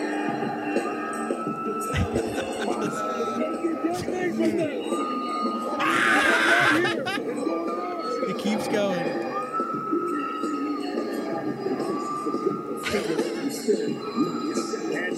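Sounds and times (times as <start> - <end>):
dense crowd of fans yelling and chattering: 0.0 - 15.1
laughter: 1.8 - 4.6, 5.8 - 7.5
crowd of fans screaming in a high-pitched frenzy: 5.8 - 7.2.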